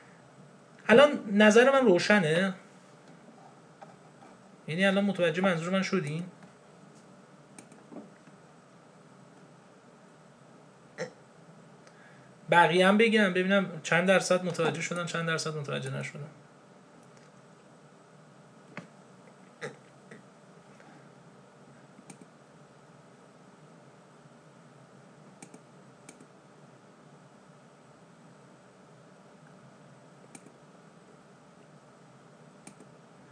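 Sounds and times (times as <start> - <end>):
steady hiss: 0.0 - 33.2
speech: 0.9 - 2.6, 4.7 - 6.4, 12.5 - 16.4
computer keyboard clicks: 25.4 - 26.3, 30.3 - 30.5, 32.6 - 32.9.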